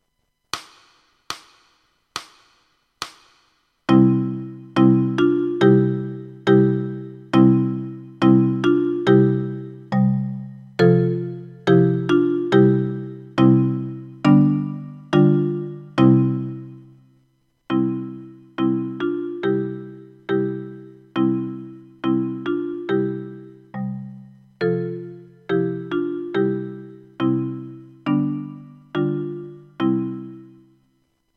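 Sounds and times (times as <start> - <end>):
marimba etude in C major played with 4 mallets: 3.9 - 16.8, 17.7 - 30.6.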